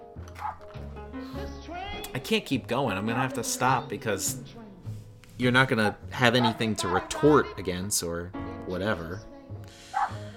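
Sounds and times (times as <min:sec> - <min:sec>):
dogs barking: 0:00.4 - 0:00.7, 0:05.8 - 0:07.3, 0:09.9 - 0:10.3
speech: 0:00.4 - 0:04.6, 0:05.4 - 0:09.8.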